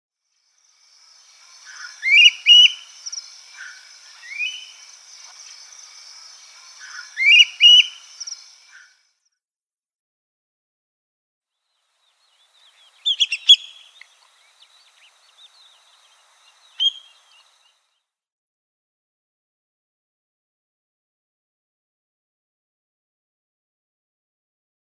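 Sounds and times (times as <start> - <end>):
Senegal Thick-knee calls: 1.4 - 5.7, 6.3 - 8.9, 12.6 - 17.8.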